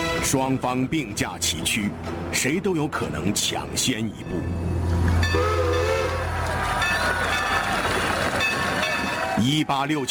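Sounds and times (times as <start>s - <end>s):
speech: 0.2s - 5.5s, 9.4s - 10.0s
steam train rumbling as it arrives: 3.4s - 9.4s.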